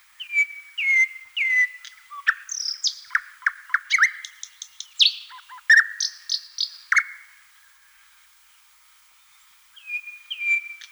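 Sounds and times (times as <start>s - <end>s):
thrush nightingale singing: 0.0s - 7.9s, 9.2s - 10.8s.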